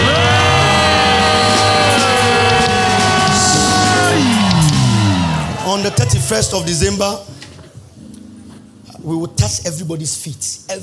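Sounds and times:
audience screaming and shouting in praise: 0.0 - 7.2
speech: 6.3 - 7.4, 9.0 - 10.8.

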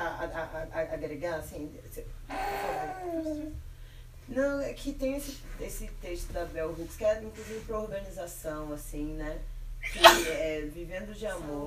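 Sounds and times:
speech: 0.2 - 3.7, 4.3 - 11.6
sneeze: 9.8 - 10.5.

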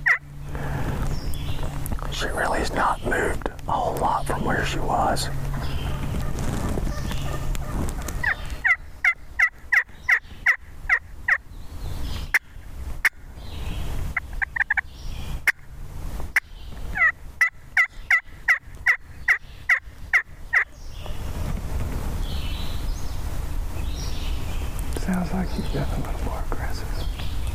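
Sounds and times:
wild turkey gobbler gobbling aggressively: 0.0 - 0.3, 5.5 - 11.4, 14.2 - 14.8, 16.9 - 21.2
steady outdoor noise: 0.0 - 27.5
speech: 2.2 - 5.5.

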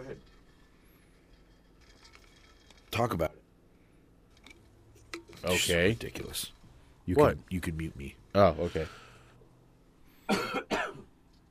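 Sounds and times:
speech: 3.0 - 3.4, 5.4 - 9.0
harsh coughs: 10.3 - 11.1.

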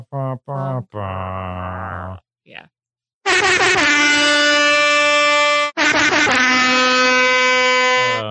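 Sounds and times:
speech: 0.1 - 1.8
air horn blasts: 3.2 - 8.2.

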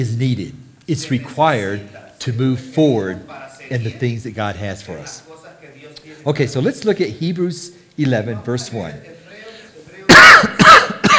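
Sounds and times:
speech: 0.0 - 9.2
person coughing and clearing the throat: 10.1 - 11.1.

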